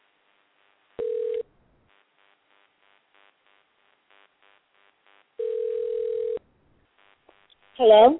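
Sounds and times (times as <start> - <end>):
dial tone on a dead phone line: 1.0 - 1.4, 5.4 - 6.4
faint rhythmic pulsing on a dead phone line: 1.0 - 8.0
speech: 7.8 - 8.1.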